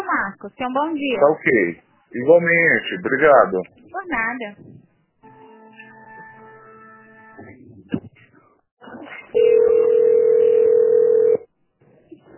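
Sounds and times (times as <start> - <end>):
speech: 0.2 - 4.8
phone line humming with tonal beeps during call transfer: 9.4 - 11.4.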